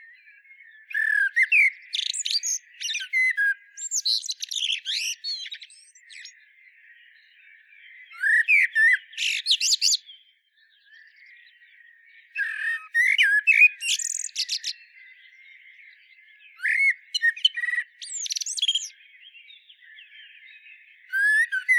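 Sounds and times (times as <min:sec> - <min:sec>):
common blackbird singing, Turdus merula: 0:00.0 - 0:21.7.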